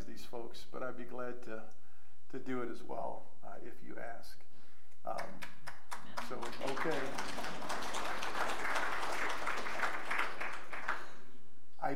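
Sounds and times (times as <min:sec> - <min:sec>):
speech: 0:00.2 - 0:09.7
room full of people applauding: 0:05.9 - 0:11.2.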